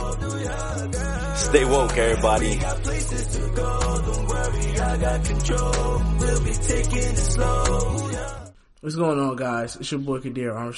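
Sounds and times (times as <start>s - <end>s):
hip-hop track with heavy pulsing bassline and dense beat: 0.0s - 8.5s
speech: 1.5s - 10.7s.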